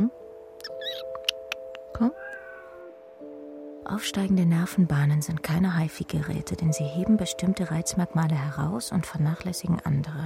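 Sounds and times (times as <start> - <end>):
faint squeaky chirps: 0.6 - 2.9
speech: 2.0 - 2.2, 3.9 - 10.2
cat meowing: 2.1 - 2.9.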